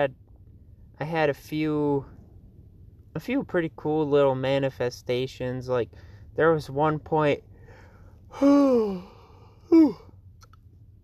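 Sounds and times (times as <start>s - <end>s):
speech: 0.0s - 0.2s, 1.0s - 2.2s, 3.2s - 7.5s, 8.3s - 9.1s, 9.7s - 10.0s
person lying down yawning: 8.3s - 10.1s.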